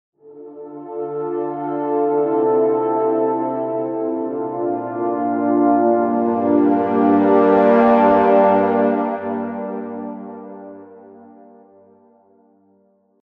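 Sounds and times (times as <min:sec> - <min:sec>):
horns long sustain with 100 percent wet reverb: 0:01.2 - 0:11.4.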